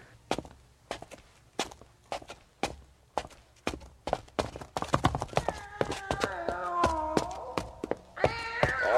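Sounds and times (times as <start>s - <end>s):
footsteps descending stairs into the cellar of an old house: 0.3s - 8.9s
cat meowing: 5.4s - 7.6s, 8.2s - 8.9s
cat yowling: 5.4s - 8.9s.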